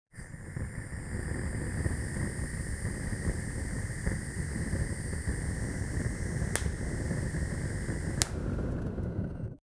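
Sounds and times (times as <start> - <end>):
burning fire torch: 0.1 - 9.6.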